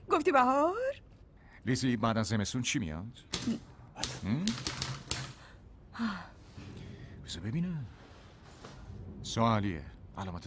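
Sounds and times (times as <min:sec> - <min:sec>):
speech: 0:00.2 - 0:01.0, 0:01.6 - 0:04.8, 0:06.0 - 0:06.3, 0:07.3 - 0:08.0, 0:09.2 - 0:10.4
typewriter key strikes clattering: 0:03.4 - 0:05.4.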